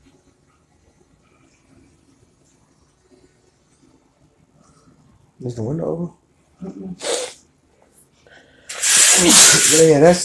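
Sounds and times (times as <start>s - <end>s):
speech: 5.4s - 7.3s, 9.2s - 10.2s
loud sneeze: 7.0s - 7.4s, 8.7s - 9.8s.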